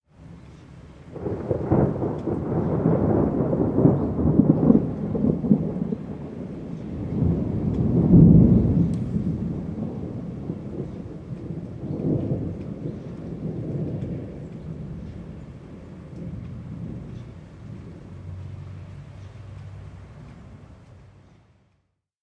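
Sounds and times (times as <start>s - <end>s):
lightning bolt thunder crack: 1.1s - 18.7s.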